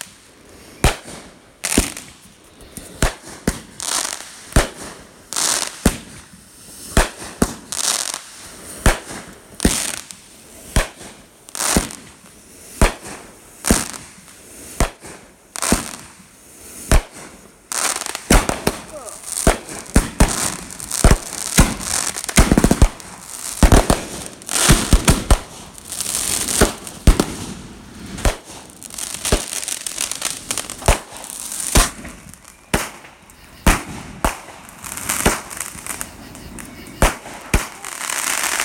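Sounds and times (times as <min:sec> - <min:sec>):
fireworks exploding overhead: 0:00.0 - 0:38.6
faint voices: 0:18.8 - 0:19.4, 0:35.9 - 0:38.6.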